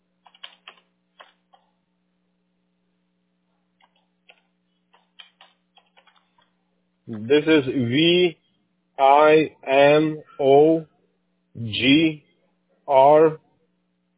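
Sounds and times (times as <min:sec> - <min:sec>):
low steady hum: 0:00.0 - 0:14.1
typing on a computer keyboard: 0:00.2 - 0:01.7, 0:03.8 - 0:06.5
speech: 0:07.1 - 0:08.4, 0:09.0 - 0:10.9, 0:11.6 - 0:12.2, 0:12.9 - 0:13.4.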